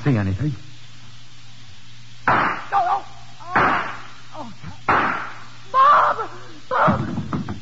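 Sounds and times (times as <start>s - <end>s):
speech: 0.0s - 0.7s
steady low electrical hum: 0.0s - 7.6s
gunshots fired from a warehouse doorway: 2.2s - 2.9s, 3.5s - 4.2s, 4.9s - 5.5s.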